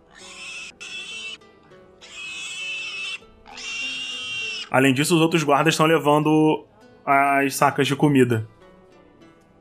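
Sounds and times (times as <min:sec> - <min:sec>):
pigs squealing: 0:00.0 - 0:01.4, 0:02.0 - 0:04.9
speech: 0:04.7 - 0:08.6.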